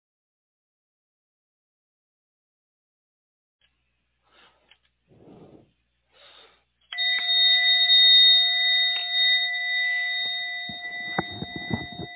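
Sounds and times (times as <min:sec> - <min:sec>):
bell struck to signal the end of a short break: 0:06.9 - 0:12.1.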